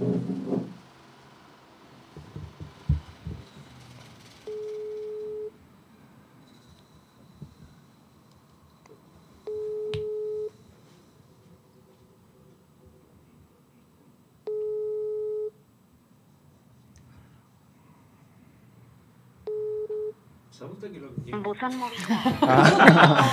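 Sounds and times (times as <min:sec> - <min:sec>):
knocks: 0:00.0 - 0:00.8, 0:02.1 - 0:03.8
phone ringback tone beeps over speakerphone: 0:04.5 - 0:05.6, 0:09.4 - 0:10.7, 0:14.5 - 0:15.6, 0:19.4 - 0:20.2
laughter: 0:21.7 - 0:23.3.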